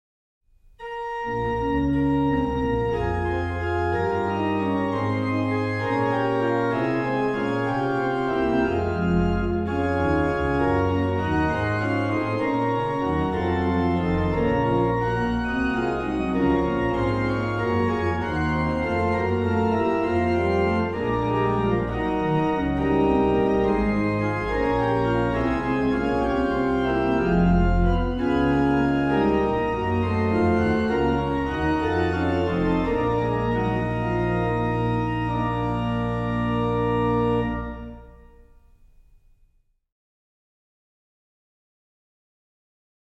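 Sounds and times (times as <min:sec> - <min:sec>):
organ music: 0:00.8 - 0:39.2.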